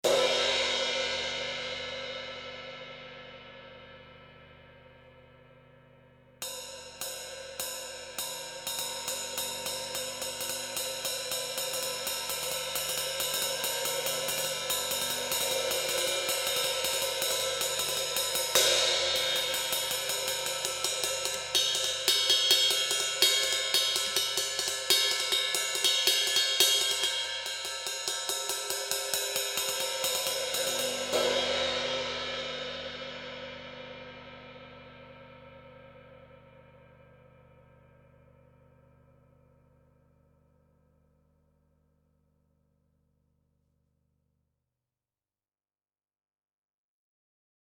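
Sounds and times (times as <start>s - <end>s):
cymbal samples: 0.0s - 37.4s.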